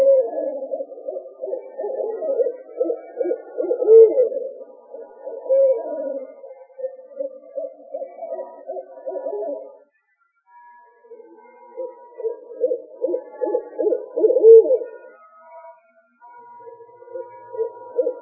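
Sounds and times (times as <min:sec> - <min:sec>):
owl hooting: 0:00.0 - 0:09.8, 0:11.8 - 0:15.0, 0:17.1 - 0:18.1.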